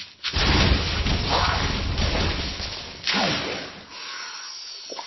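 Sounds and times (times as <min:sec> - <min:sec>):
zombies falling off a cliff: 0:00.3 - 0:03.8.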